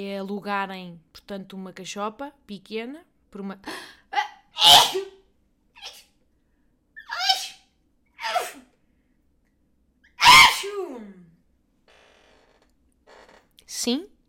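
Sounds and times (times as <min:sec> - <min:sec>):
speech: 0:00.0 - 0:04.0, 0:04.6 - 0:05.1, 0:13.8 - 0:14.1
person sneezing: 0:04.2 - 0:05.2, 0:08.2 - 0:08.7, 0:10.2 - 0:11.1.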